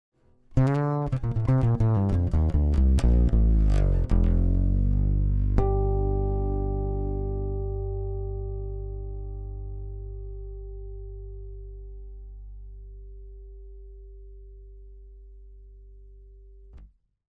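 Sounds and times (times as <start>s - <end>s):
passive piezo sound: 0.5s - 8.4s.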